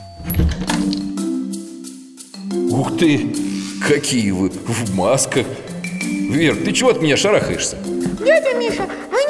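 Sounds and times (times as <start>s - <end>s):
front door latch clicks and thunks being unlocked: 0.2s - 1.2s
speech: 3.0s - 5.7s, 6.3s - 9.1s.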